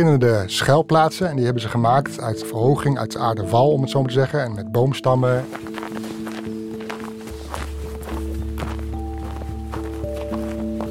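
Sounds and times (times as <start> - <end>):
speech: 0.0 - 6.0
footsteps crunching across a snowy landscape: 5.3 - 10.8.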